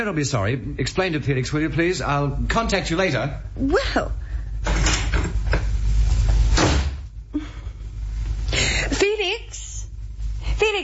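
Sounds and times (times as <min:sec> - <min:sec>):
speech: 0:00.0 - 0:04.2
steady low rumble of room noise: 0:00.0 - 0:10.8
front door closing with a solid thud: 0:06.5 - 0:07.0.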